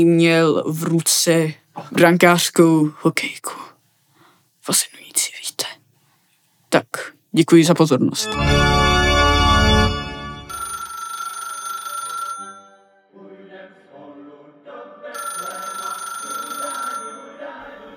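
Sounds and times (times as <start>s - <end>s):
speech: 0.0s - 3.7s, 4.7s - 5.8s, 6.7s - 8.8s
telephone ringing during Christmas Eve dinner: 8.4s - 12.7s, 15.2s - 17.3s.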